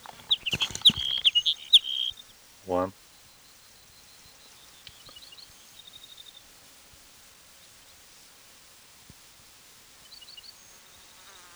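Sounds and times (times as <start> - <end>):
hedge sparrow singing short high thin chirps: 0.0 - 2.9
speech: 2.7 - 3.0.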